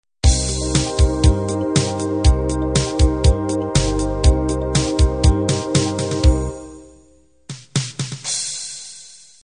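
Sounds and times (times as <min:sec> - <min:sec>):
8-bit analog music intro: 0:00.2 - 0:07.1.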